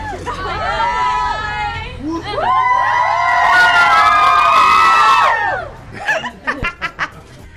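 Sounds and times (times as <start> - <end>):
audience screaming and cheering: 0.0 - 5.9
audience laughter and chatter: 0.0 - 7.5.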